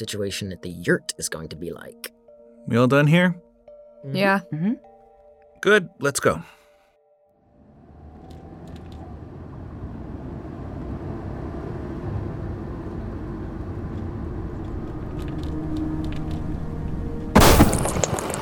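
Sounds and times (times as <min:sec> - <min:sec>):
speech: 0:00.0 - 0:04.9, 0:05.6 - 0:06.6
low road rumble of a moving car: 0:07.5 - 0:17.4.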